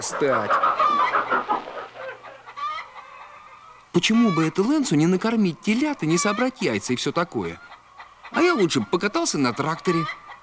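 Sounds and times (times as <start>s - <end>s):
speech: 0.0s - 1.2s, 4.0s - 7.7s, 8.3s - 10.2s
chicken clucking and squawking on a farm: 0.0s - 10.4s.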